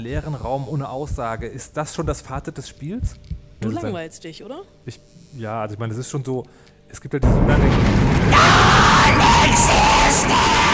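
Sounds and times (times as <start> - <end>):
speech: 0.0 - 8.8
room rumbling and shaking in a video game: 7.2 - 10.7
person screaming: 8.3 - 10.7.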